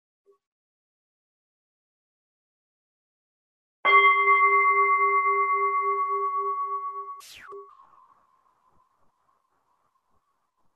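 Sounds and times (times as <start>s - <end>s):
meditation bell struck for a meditation session: 3.9s - 7.2s
brief scrape: 7.2s - 7.7s.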